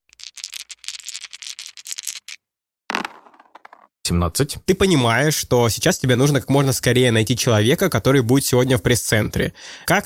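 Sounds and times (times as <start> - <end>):
dice rolled for a wisdom check rattling: 0.1 - 3.9
speech: 4.1 - 10.0.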